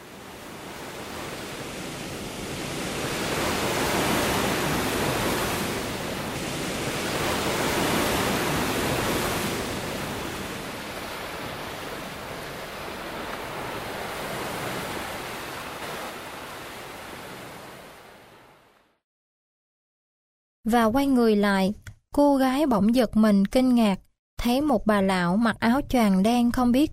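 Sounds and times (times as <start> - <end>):
waves washing onto a sandy shore: 0.0 - 18.8
speech: 20.7 - 26.9.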